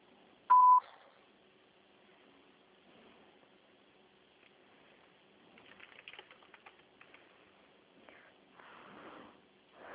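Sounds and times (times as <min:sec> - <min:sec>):
short steady electronic beep: 0:00.5 - 0:00.9
faint clicking and tapping noises: 0:04.4 - 0:08.3.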